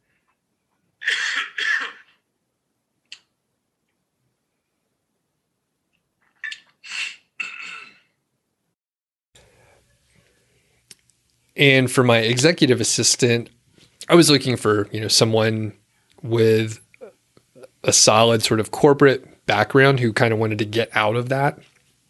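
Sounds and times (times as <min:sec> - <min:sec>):
person coughing harshly: 0:01.0 - 0:02.2, 0:06.5 - 0:08.2
speech: 0:11.6 - 0:16.8, 0:17.8 - 0:21.7.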